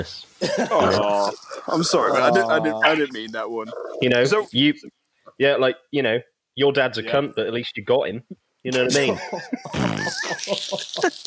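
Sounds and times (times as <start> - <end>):
speech: 0.0 - 11.2
person laughing hard: 0.4 - 3.2, 8.7 - 11.2
person farting while laughing: 9.7 - 10.5.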